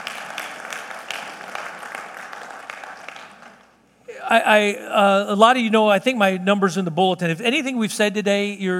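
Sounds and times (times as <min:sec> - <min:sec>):
audience applauding: 0:00.0 - 0:03.9
speech: 0:04.3 - 0:08.7.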